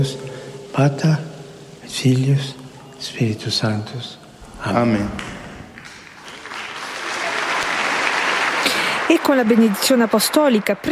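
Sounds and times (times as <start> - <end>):
speech: 0.0 - 1.3, 1.9 - 5.3, 9.1 - 10.9
large indoor crowd applauding: 5.2 - 10.9.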